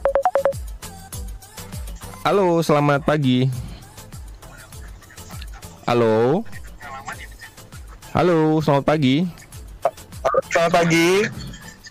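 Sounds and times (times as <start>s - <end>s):
electronic phone beeps: 0.0s - 0.6s
speech: 2.2s - 3.6s, 5.9s - 6.2s, 8.2s - 9.4s, 10.6s - 11.4s.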